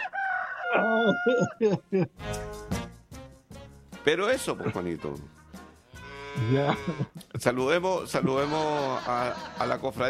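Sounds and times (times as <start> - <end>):
rooster crowing, calling the hens: 0.0 - 1.6
rooster clucking: 0.0 - 1.8
speech: 0.7 - 2.4, 4.0 - 5.4, 6.4 - 10.0
laughter: 0.9 - 2.2, 4.3 - 5.2, 6.4 - 7.1, 8.1 - 10.0.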